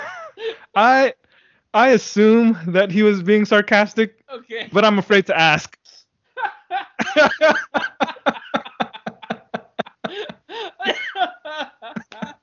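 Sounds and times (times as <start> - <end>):
speech: 0.8 - 5.8, 6.4 - 8.4
laughter: 6.4 - 12.4
person coughing: 9.9 - 12.4.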